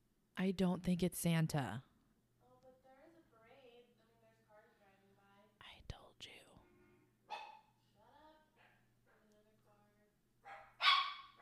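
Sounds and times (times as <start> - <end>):
speech: 0.4 - 1.9
dog barking outside: 7.3 - 7.8, 8.6 - 8.9, 10.4 - 11.4.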